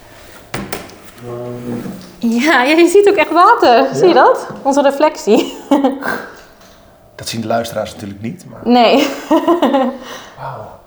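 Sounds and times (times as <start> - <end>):
lid of an old preserved water well being opened: 0.0 - 2.2
speech: 1.2 - 6.4, 7.2 - 10.8
laughter: 1.2 - 10.8.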